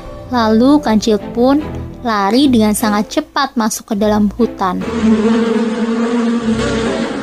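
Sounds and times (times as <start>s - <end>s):
speech: 0.3s - 6.0s
swarm of bees buzzing around a beehive: 4.7s - 7.2s.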